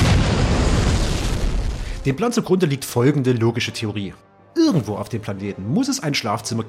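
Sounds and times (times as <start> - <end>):
loud sustained explosion with deep rumbling boom: 0.0 - 2.1
speech: 2.0 - 6.6.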